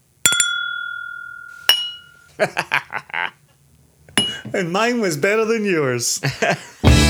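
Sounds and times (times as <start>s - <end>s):
glasses clinking in a whisky toast: 0.2s - 2.4s, 4.1s - 4.7s
speech: 2.4s - 2.9s, 4.5s - 6.8s
laughter: 2.4s - 3.4s, 4.5s - 6.9s
short bursts of voices: 4.5s - 6.4s.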